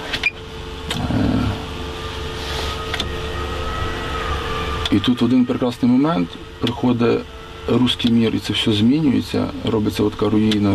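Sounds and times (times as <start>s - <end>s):
drone hovering overhead: 0.3s - 10.7s
speech: 4.9s - 10.7s.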